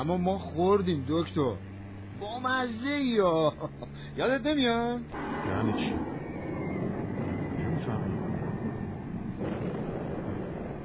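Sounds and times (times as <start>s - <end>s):
speech: 0.0s - 6.2s
airplane flying low overhead: 0.0s - 10.8s
faint rising whooshes: 5.1s - 10.8s.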